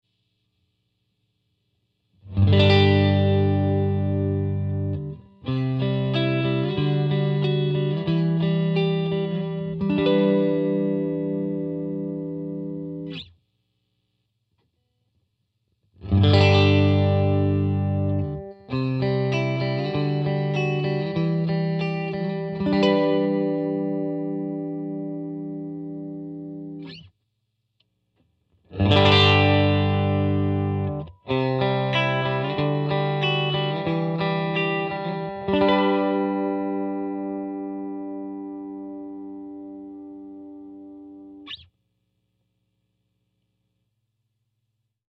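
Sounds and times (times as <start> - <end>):
clean Tele guitar: 2.2 - 13.4, 16.0 - 27.1, 28.6 - 41.7.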